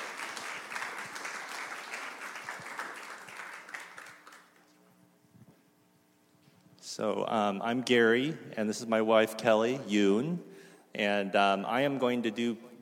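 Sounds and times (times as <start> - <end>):
crowd clapping: 0.0 - 4.8
speech: 7.0 - 12.7.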